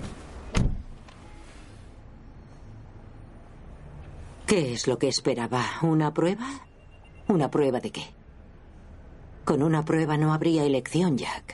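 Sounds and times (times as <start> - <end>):
car door shutting as people get into the car: 0.0 - 1.2
quiet noise: 0.0 - 11.5
speech: 4.5 - 6.7, 7.3 - 8.2, 9.5 - 11.5.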